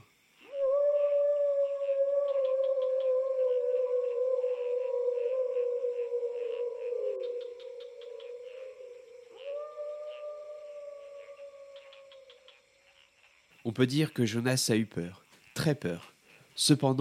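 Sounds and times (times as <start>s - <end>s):
distant howls: 0.5s - 12.6s
speech: 13.7s - 17.0s.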